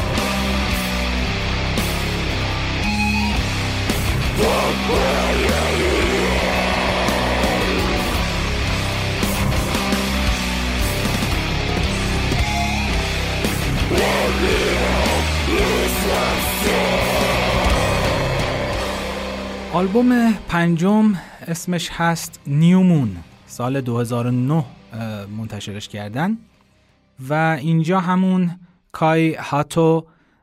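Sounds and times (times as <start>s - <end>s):
chugging distorted guitar in a heavy metal riff: 0.0s - 20.6s
high bending electric guitar pinch harmonic squeals: 1.8s - 9.7s, 12.3s - 20.2s
speech: 19.8s - 26.5s, 27.2s - 30.1s.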